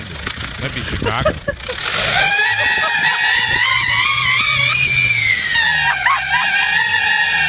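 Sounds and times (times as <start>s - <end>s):
low rumbling wind on a windy day: 0.0s - 5.6s
speech: 0.6s - 2.4s
laughter: 0.8s - 3.9s, 5.7s - 6.7s
high-pitched whistling squeal from novelty noisemaker in car exhaust: 2.0s - 7.4s.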